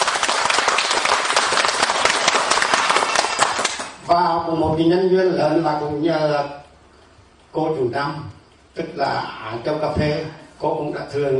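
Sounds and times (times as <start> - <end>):
audience applause for a visiting teacher: 0.0 - 4.0
speech: 4.1 - 6.6, 7.6 - 11.3.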